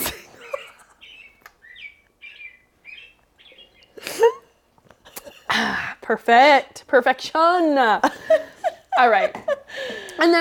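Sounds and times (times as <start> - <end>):
recorded bird song from a bird clock: 0.4 - 4.0
speech: 5.6 - 8.4, 9.0 - 9.4, 10.2 - 10.4.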